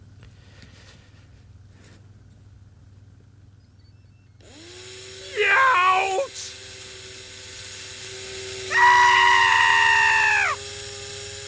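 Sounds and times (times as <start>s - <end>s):
power drill boring ear canal holes into a foam dummy head: 4.4s - 11.4s.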